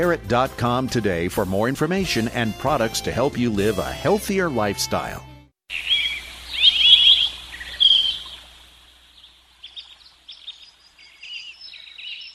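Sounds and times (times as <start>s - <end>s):
speech: 0.0s - 5.9s
birds chirping and twittering: 5.7s - 12.3s.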